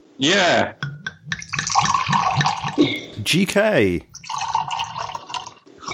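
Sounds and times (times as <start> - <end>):
speech: 0.2 - 0.9, 2.8 - 4.1
wine pouring into a glass: 0.8 - 3.2, 4.1 - 5.9.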